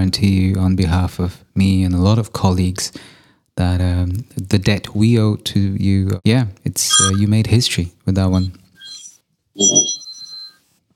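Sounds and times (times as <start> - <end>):
speech: 0.0 - 8.6, 9.6 - 10.1
short bright high-pitched electronic alarm tone: 6.9 - 7.2, 8.8 - 10.6.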